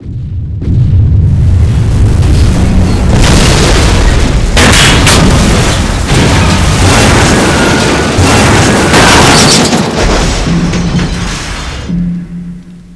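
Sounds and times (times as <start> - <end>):
core detonation: 0.0 - 12.9.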